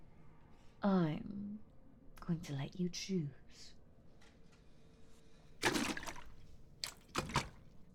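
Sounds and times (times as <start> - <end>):
speech: 0.8 - 1.4, 2.3 - 3.8
ocean salt water mixed with fresh water pouring for drinking: 5.6 - 7.8.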